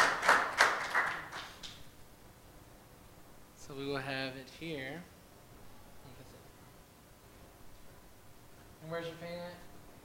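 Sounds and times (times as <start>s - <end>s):
audience clapping: 0.0s - 1.8s
speech: 4.0s - 5.2s, 8.9s - 9.6s.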